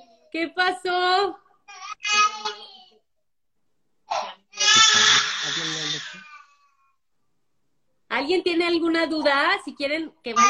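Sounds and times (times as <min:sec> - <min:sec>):
speech: 0:00.3 - 0:01.4, 0:08.2 - 0:10.4
baby crying: 0:01.7 - 0:03.0, 0:04.1 - 0:07.0, 0:10.3 - 0:10.4.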